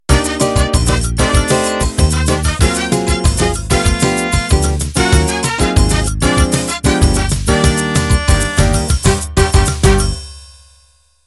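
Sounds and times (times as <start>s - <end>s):
samba music intro: 0.1s - 10.3s.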